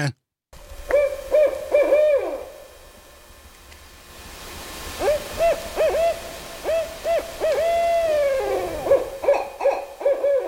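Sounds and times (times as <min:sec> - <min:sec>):
speech: 0:00.0 - 0:00.2
soft hiss: 0:00.0 - 0:10.4
barred owl hooting: 0:00.9 - 0:02.7, 0:05.0 - 0:10.4.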